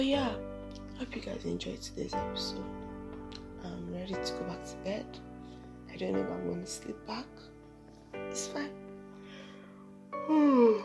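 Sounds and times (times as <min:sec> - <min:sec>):
speech: 0:00.0 - 0:02.8, 0:03.6 - 0:05.3, 0:05.9 - 0:07.5, 0:08.1 - 0:08.8, 0:10.3 - 0:10.8
person yawning: 0:10.2 - 0:10.8.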